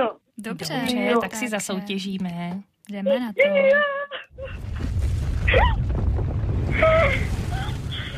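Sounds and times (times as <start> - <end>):
speech: 0.0 - 4.6
loud continuous volcanic eruption rumble: 4.3 - 8.1.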